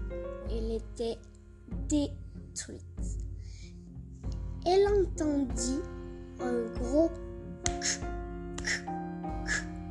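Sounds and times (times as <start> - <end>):
speech: 0.8 - 3.2, 4.7 - 8.8
voice imitating an axe chopping wood: 7.7 - 9.8.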